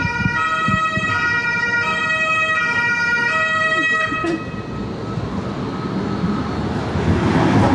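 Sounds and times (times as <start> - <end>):
multi-toned siren-like blare of a passing car: 0.0 - 5.2
road noise and rushing traffic: 0.0 - 7.7
loud car passing by: 4.3 - 7.7.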